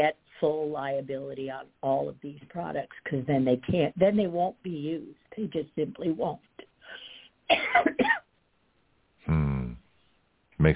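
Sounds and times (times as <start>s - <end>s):
speech: 0.0s - 8.2s, 9.3s - 9.8s, 10.6s - 10.7s
harsh coughs: 7.5s - 8.3s.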